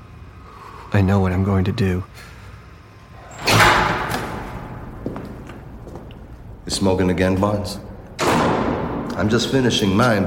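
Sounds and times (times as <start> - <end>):
speech: 0.9 - 2.3, 6.6 - 7.9, 9.2 - 10.2
door swinging slowly shut: 3.2 - 5.8, 8.0 - 9.5.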